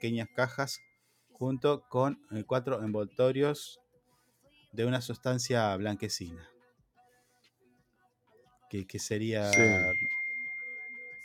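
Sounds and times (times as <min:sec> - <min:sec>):
speech: 0:00.0 - 0:03.8, 0:04.7 - 0:06.5, 0:08.7 - 0:10.1
mobile phone notification ding: 0:09.4 - 0:11.2.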